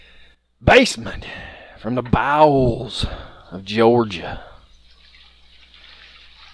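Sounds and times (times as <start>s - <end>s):
speech: 0.6s - 4.5s
runoff pouring from gutters: 1.8s - 6.5s
toilet flushing: 4.4s - 6.5s.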